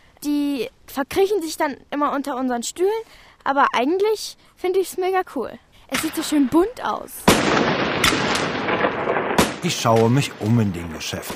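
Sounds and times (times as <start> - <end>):
crackling hissy background: 0.0 - 11.3
speech: 0.2 - 11.3
small snap-pop firecrackers thrown and bursting: 7.3 - 10.6.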